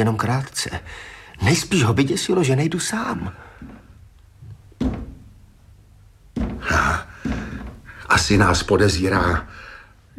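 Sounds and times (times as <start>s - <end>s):
speech: 0.0s - 3.8s, 8.1s - 9.6s
dull knocking on a door: 4.8s - 5.4s, 6.3s - 9.4s.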